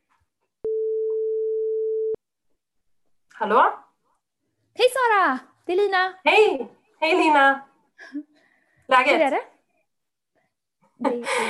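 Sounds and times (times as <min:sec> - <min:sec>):
telephone ringing tone while a call is placed: 0:00.7 - 0:02.2
speech: 0:03.4 - 0:03.8, 0:04.8 - 0:08.3, 0:08.9 - 0:09.5, 0:11.0 - 0:11.4.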